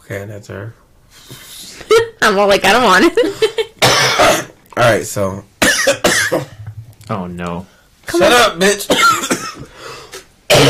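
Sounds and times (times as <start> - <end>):
speech: 0.1 - 1.5, 2.2 - 6.5, 7.1 - 9.7
person coughing harshly into a microphone: 3.8 - 4.6, 5.6 - 6.7, 8.9 - 9.7, 10.5 - 10.6.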